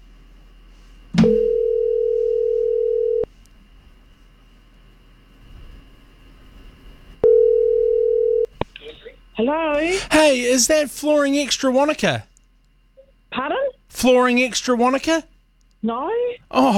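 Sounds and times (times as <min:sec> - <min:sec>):
phone line ringback tone on an outgoing call made live on radio: 0:01.2 - 0:03.3, 0:07.2 - 0:08.5
speech: 0:09.4 - 0:12.3, 0:14.0 - 0:16.7.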